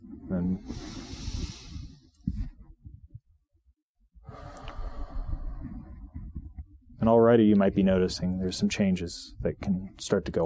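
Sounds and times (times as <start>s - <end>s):
speech: 0.3s - 1.1s, 7.1s - 10.4s
slow controlled box breathing in and out: 0.4s - 2.7s, 4.2s - 6.9s.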